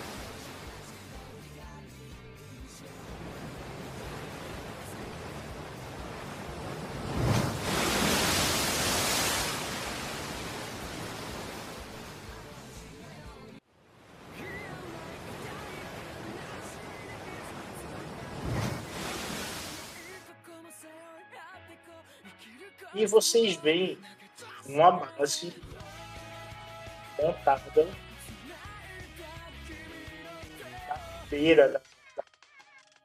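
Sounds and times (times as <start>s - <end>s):
ocean waves breaking on a beach: 0.0s - 1.3s, 2.7s - 13.2s, 13.9s - 20.2s
speech: 22.9s - 25.7s, 27.2s - 28.0s, 31.3s - 31.8s.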